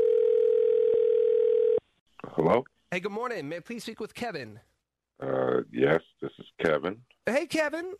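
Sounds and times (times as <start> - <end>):
telephone dial tone as a call is placed: 0.0 - 1.8
speech: 2.4 - 7.9.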